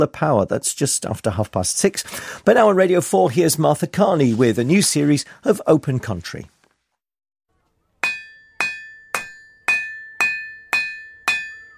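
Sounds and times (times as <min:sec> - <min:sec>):
speech: 0:00.0 - 0:06.5
hammer striking red-hot metal at a forge: 0:08.0 - 0:11.7.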